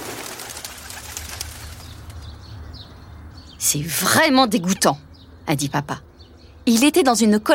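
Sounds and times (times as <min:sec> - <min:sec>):
flock of pigeons taking flight with fluttering wingbeats: 0:00.0 - 0:02.3
speech: 0:03.6 - 0:07.5.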